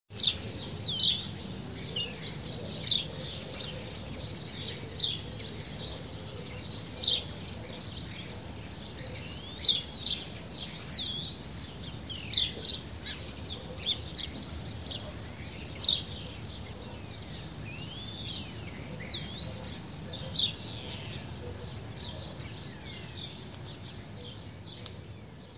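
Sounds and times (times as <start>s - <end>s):
house sparrow Passer domesticus chirping: 0.2s - 24.4s.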